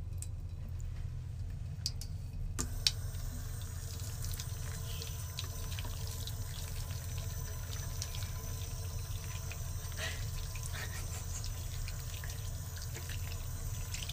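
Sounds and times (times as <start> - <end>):
running tap water washing something: 0.1 - 14.1.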